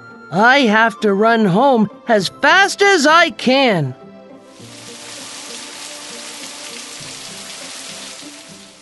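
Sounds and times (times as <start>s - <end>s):
speech: 0.3s - 4.0s
dense rain pattering on a hard surface: 4.5s - 8.7s.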